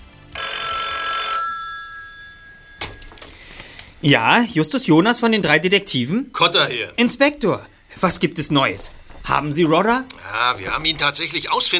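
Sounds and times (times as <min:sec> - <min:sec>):
telephone ringing with a bright trilling tone: 0:00.3 - 0:03.5
speech: 0:04.0 - 0:11.7.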